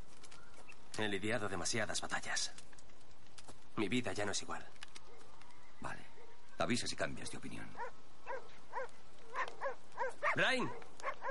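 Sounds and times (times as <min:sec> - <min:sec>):
speech: 0:01.0 - 0:02.8, 0:03.8 - 0:04.9, 0:06.6 - 0:08.0, 0:10.4 - 0:10.8
dog barking: 0:07.8 - 0:11.2.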